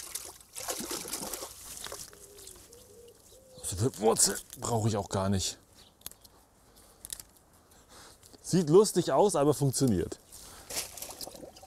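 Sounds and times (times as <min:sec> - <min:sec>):
running water rinsing plant roots: 0:00.0 - 0:02.1
speech: 0:03.8 - 0:05.6, 0:08.5 - 0:10.2.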